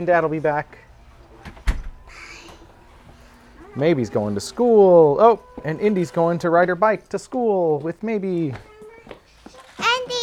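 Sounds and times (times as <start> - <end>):
speech: 0.0 - 0.9, 3.8 - 8.7
garage door sharp clunk: 0.0 - 6.4
garage door opening with mechanical whirring hum: 0.0 - 7.4.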